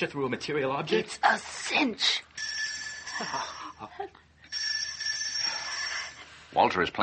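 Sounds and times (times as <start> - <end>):
speech: 0.0 - 2.3, 3.2 - 4.6, 6.5 - 7.0
bell ringing in a rapid trill: 2.4 - 3.8, 4.5 - 6.3.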